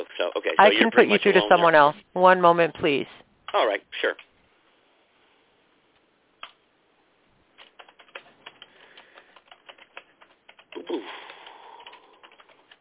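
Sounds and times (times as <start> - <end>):
person speaking on phone: 0.0 - 4.2
speech: 0.0 - 4.3
keyboard typing during a phone call: 7.6 - 12.8.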